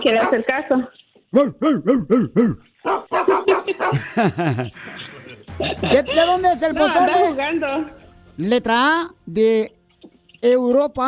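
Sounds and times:
small dog barking: 0.0s - 0.5s, 2.8s - 4.0s
mix of voices: 0.0s - 2.6s, 3.9s - 8.6s
speech: 0.0s - 3.0s, 3.9s - 9.8s, 10.4s - 11.0s
laughter: 1.4s - 2.6s, 3.3s - 6.7s.

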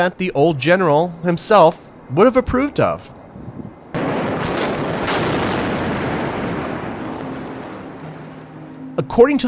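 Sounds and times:
speech: 0.0s - 3.2s, 9.0s - 9.4s
controlled demolition explosion of steel bridge: 3.9s - 9.4s.

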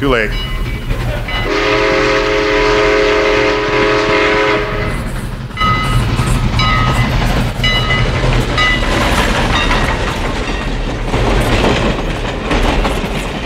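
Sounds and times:
speech: 0.0s - 1.6s
heavy rumble and rhythmic clatter of a train rolling past: 0.0s - 13.4s
loud sustained train horn blast: 1.4s - 6.0s.

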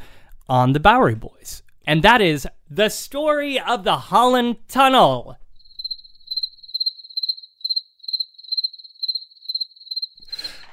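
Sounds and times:
speech: 0.5s - 5.4s
crickets chirping: 5.6s - 10.7s.

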